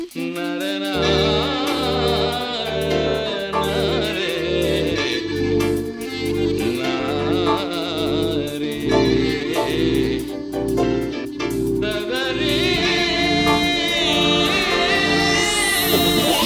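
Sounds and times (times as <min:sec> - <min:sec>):
background humming tone: 0:00.1 - 0:16.4.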